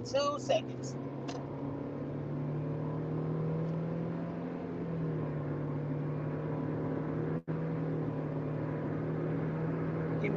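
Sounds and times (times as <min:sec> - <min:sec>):
speech: 0:00.0 - 0:01.1
car engine accelerating while overtaking three cars in traffic: 0:00.0 - 0:10.3
road noise: 0:00.0 - 0:10.3.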